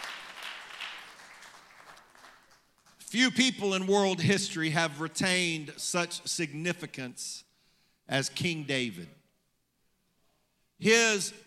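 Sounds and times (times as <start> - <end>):
audience clapping hands in praise: 0.0 - 3.0
speech: 3.1 - 7.5, 8.1 - 9.2, 10.8 - 11.4.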